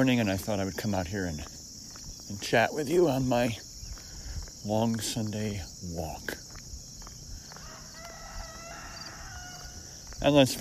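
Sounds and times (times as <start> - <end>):
speech: 0.0 - 1.6, 2.3 - 3.7, 4.6 - 6.4, 10.2 - 10.6
rooster crowing on a Sunday morning walk outdoors: 7.5 - 10.0.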